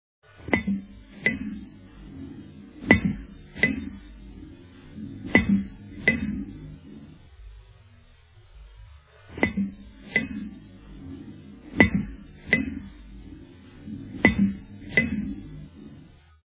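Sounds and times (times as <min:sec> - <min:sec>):
international broadcast interval signal: 0:00.6 - 0:07.2, 0:09.4 - 0:15.9.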